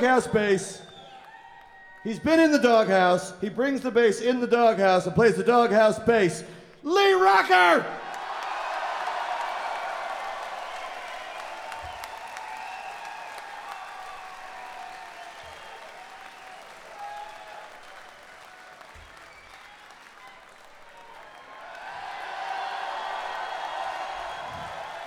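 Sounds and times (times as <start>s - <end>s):
speech: 0.0s - 0.9s, 2.0s - 8.0s
crowd applauding and cheering: 0.0s - 3.4s, 8.0s - 25.0s
whoops from the crowd: 1.0s - 2.1s, 8.1s - 25.0s.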